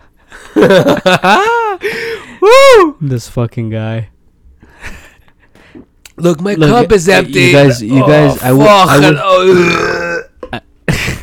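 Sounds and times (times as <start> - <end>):
laughter: 0.4 - 2.1
speech: 0.6 - 4.1, 6.2 - 10.7
loud drawn-out burp: 9.4 - 10.6.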